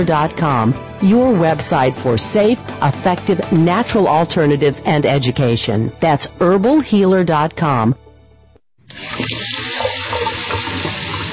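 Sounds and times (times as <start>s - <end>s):
speech: 0.0s - 8.0s
faucet water running into a sink: 8.9s - 11.3s.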